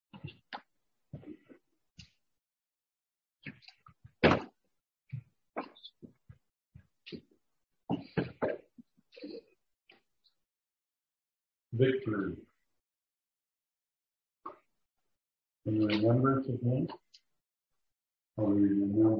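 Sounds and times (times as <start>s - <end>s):
heavier chair thud: 4.2s - 4.5s
speech: 11.8s - 12.5s, 15.7s - 17.1s, 18.4s - 19.1s.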